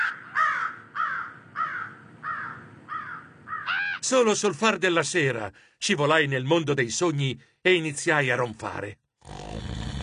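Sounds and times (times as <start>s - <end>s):
flock of crows cawing: 0.0s - 4.1s
speech: 4.1s - 9.0s.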